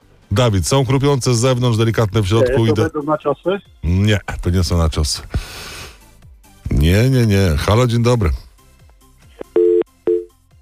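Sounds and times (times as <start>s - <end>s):
speech: 0.3s - 5.7s, 6.7s - 8.4s
electronic telephone line beeps on a call-in phone line: 9.4s - 10.3s.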